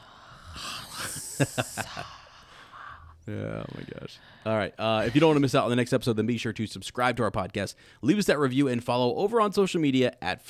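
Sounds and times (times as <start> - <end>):
person making a breathy hiss imitating a snake: 0.4 - 1.9
speech: 1.4 - 2.2, 3.2 - 10.4.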